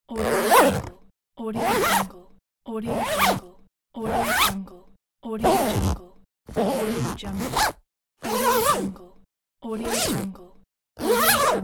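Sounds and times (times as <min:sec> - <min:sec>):
zipper: 0:00.1 - 0:01.0, 0:01.6 - 0:02.1, 0:02.9 - 0:03.4, 0:04.0 - 0:04.6, 0:05.4 - 0:09.0, 0:09.8 - 0:10.4, 0:11.0 - 0:11.6.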